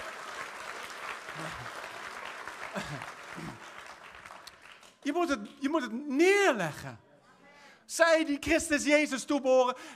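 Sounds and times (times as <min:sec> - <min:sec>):
sustained audience applause: 0:00.0 - 0:05.0
speech: 0:01.4 - 0:01.8, 0:02.8 - 0:03.7, 0:05.0 - 0:07.0, 0:07.9 - 0:09.9.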